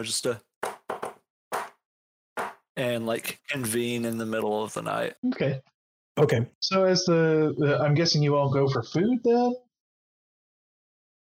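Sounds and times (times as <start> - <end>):
speech: 0.0 - 0.5, 2.8 - 9.6
solid knocking on a wall: 2.4 - 2.6.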